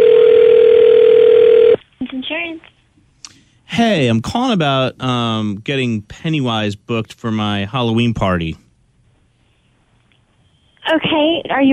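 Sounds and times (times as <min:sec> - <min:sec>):
telephone line tone as a call is placed to an insurance company: 0:00.0 - 0:01.8
speech: 0:03.8 - 0:08.6, 0:10.8 - 0:11.7.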